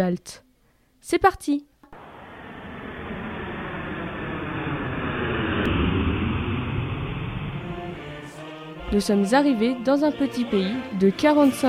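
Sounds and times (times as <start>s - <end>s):
speech: 0.0s - 0.4s, 1.0s - 1.7s, 8.9s - 11.6s
airplane in flight roar: 1.9s - 8.4s.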